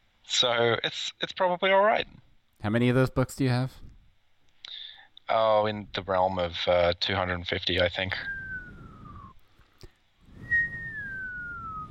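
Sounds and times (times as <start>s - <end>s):
speech: 0.4s - 3.9s, 5.3s - 8.4s
attempted whistling through dry lips: 8.1s - 9.5s, 10.3s - 11.8s.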